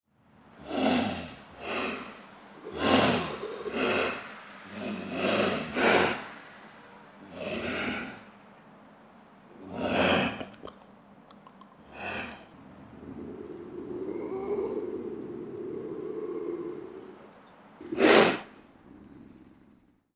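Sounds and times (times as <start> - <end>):
Lynx lynx: 0.4 - 19.8.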